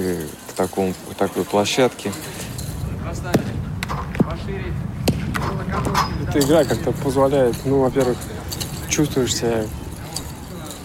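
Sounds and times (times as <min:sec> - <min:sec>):
faint indistinct voices: 0:00.0 - 0:10.8
speech: 0:00.1 - 0:02.5, 0:03.1 - 0:09.8
football bouncing and being kicked in a game: 0:05.0 - 0:06.0.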